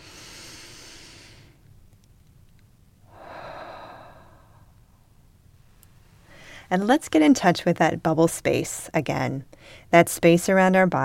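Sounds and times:
person taking a slow deep breath during a guided meditation: 0.0 - 1.6, 3.1 - 4.8, 6.2 - 6.7
speech: 6.7 - 11.0.

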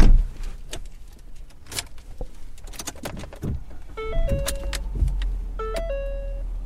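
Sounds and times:
car driving heard from inside: 0.0 - 6.6
short two-tone electronic chimes in a car: 4.0 - 4.8, 5.6 - 6.5.

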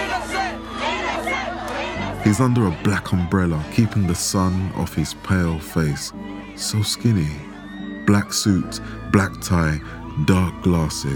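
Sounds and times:
large crowd cheering and yelling wildly outside a courthouse: 0.0 - 11.1
speech: 2.2 - 7.5, 8.1 - 11.1.

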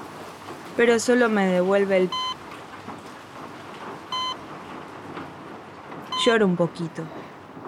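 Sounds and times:
steady rain falling on a surface: 0.0 - 7.6
speech: 0.8 - 2.3, 6.2 - 7.2
short electronic beep: 2.2 - 2.4, 4.2 - 4.4.

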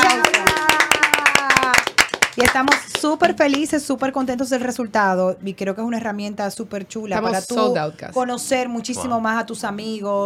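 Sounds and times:
sharp irregular hand claps from a small group: 0.0 - 3.7
speech: 2.4 - 10.2.

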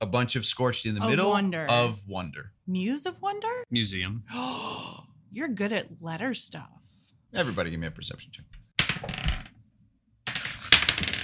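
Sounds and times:
speech: 0.1 - 9.3
dice clattering across a hard tabletop: 10.3 - 11.2.

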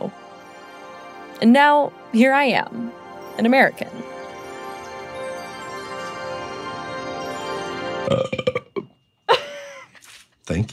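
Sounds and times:
speech: 1.4 - 4.2, 8.1 - 8.6, 10.5 - 10.7
guttural croaks: 8.1 - 8.9
throaty gulp: 8.1 - 8.9
long burp: 8.1 - 9.0.

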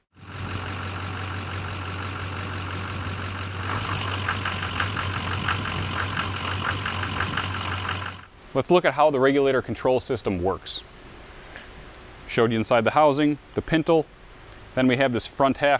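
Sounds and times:
diesel truck engine running extremely rough with clattering knocks: 0.1 - 8.3
speech: 8.6 - 11.0, 12.3 - 14.2, 14.8 - 15.7.

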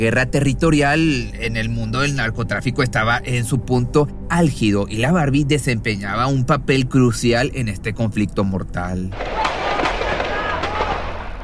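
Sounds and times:
speech: 0.0 - 9.4
gunshots in a street shootout: 9.2 - 11.4.

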